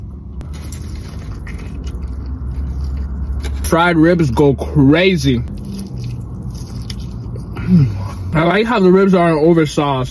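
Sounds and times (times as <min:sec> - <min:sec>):
old bus engine rumbling: 0:00.0 - 0:10.0
speech: 0:03.7 - 0:05.6, 0:07.7 - 0:10.0.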